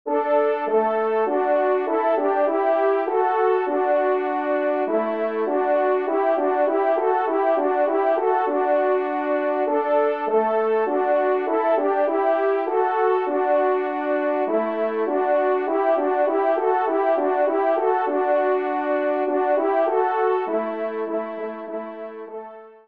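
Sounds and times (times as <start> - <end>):
horn playing cotillion in C major: 0.1 - 22.7.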